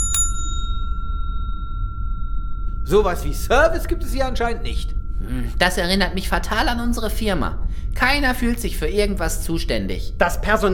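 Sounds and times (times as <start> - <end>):
service counter bell ding: 0.0 - 5.6
low hum: 0.0 - 10.7
speech: 2.9 - 10.7.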